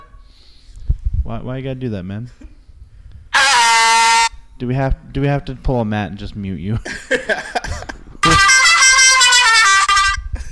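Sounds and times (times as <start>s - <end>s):
speech: 1.3s - 2.5s, 4.6s - 7.9s
air horn blast from phone app: 3.3s - 4.5s, 8.2s - 10.4s
laughter: 6.8s - 8.6s.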